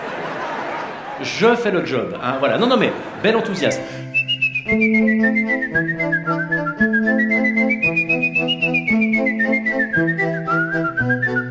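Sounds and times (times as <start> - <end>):
laughter: 0.0 - 3.8
speech: 1.2 - 7.4
person whistling a clear high melody: 4.1 - 11.4.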